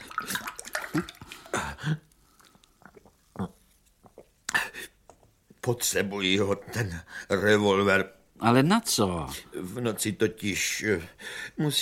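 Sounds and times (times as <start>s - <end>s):
water pouring into a glass: 0.0s - 1.6s
speech: 1.0s - 1.2s, 5.7s - 11.8s.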